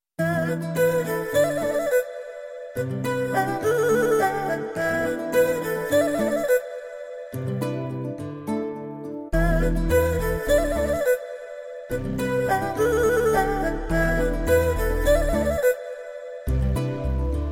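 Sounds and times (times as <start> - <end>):
Telugu love guitar background music ringtone: 0.2 - 17.5.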